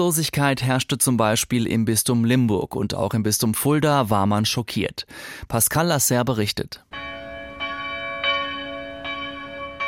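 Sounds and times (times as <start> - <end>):
speech: 0.0 - 7.0
cathedral bell tolling at noon: 6.9 - 9.8.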